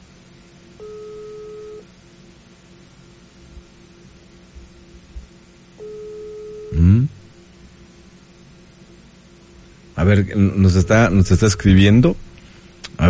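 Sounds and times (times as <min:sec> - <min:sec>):
ringback tone of an outgoing telephone call: 0:00.8 - 0:01.9, 0:05.8 - 0:06.8
speech: 0:06.7 - 0:07.1, 0:10.0 - 0:12.3.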